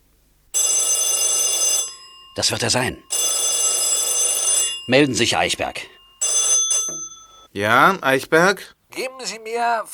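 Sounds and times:
loud telephone bell ringing: 0.5 - 7.5
speech: 2.4 - 3.3, 4.9 - 6.0, 7.6 - 9.9.

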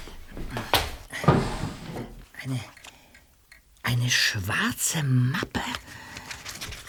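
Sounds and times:
wooden desk drawer sliding open with scraping rattle: 0.7 - 2.3
speech: 2.5 - 2.7, 3.9 - 5.9.

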